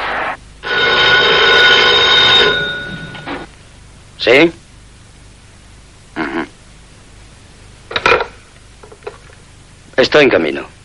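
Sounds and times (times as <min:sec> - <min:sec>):
telephone bell ringing in an apartment in a luxurious building: 0:00.6 - 0:03.5
speech: 0:04.2 - 0:04.6, 0:10.0 - 0:10.8.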